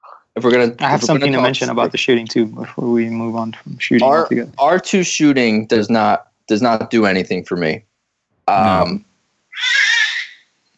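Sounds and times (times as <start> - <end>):
laughter: 0.4 - 5.0
speech: 0.4 - 7.9, 8.5 - 9.8
baby screaming: 9.6 - 10.4.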